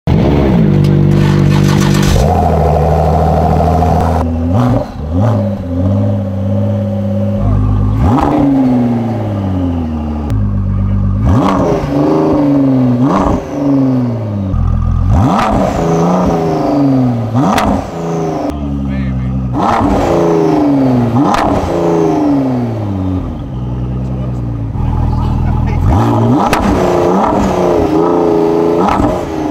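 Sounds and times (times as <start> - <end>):
Ford GT sports car engine: 0.1 - 29.4.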